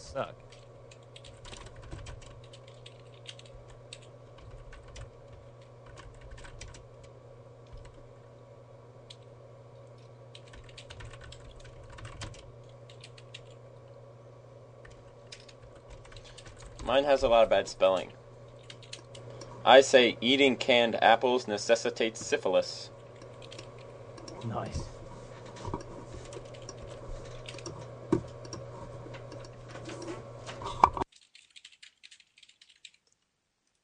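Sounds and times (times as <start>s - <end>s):
low electrical hum: 0.0s - 33.8s
speech: 0.1s - 0.6s, 16.9s - 18.2s, 19.7s - 22.9s
several people typing on computer keyboards: 0.5s - 6.8s, 7.7s - 8.0s, 10.3s - 13.6s, 14.8s - 16.9s, 18.6s - 19.2s, 23.2s - 24.4s, 26.3s - 27.8s, 31.1s - 33.8s.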